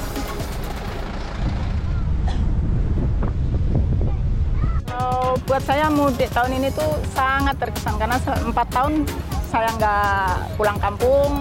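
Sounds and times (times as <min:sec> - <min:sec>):
engines of four-wheeled vehicles boarding a ferry: 0:00.0 - 0:11.4
gusty wind buffeting the microphone at a ferry dock: 0:01.0 - 0:06.0
speech: 0:05.5 - 0:11.4.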